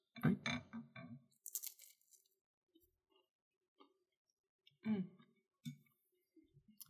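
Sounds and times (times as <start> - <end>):
speech: 0.2 - 0.6
crisp crunching of a cheese cracker being bitten and chewed at a cheese and wine tasting: 1.4 - 2.3.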